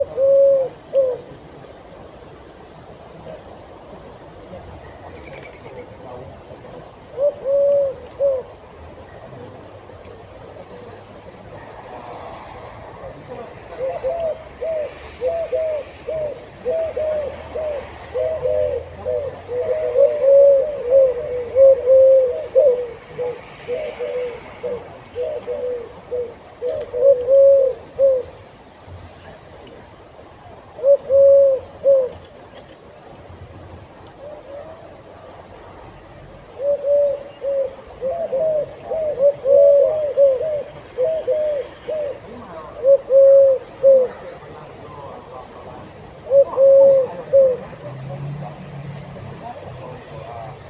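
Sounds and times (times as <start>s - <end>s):
Streptopelia decaocto collared dove: 0.0s - 12.0s, 12.6s - 28.5s, 29.1s - 33.2s, 34.0s - 48.6s.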